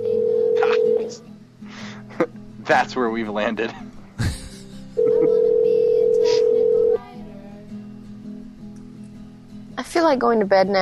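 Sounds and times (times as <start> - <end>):
telephone tone on a prank phone call: 0.0 - 1.2, 5.0 - 7.0
laughter: 2.1 - 2.4, 3.6 - 5.6
speech: 2.7 - 3.9, 10.0 - 10.8.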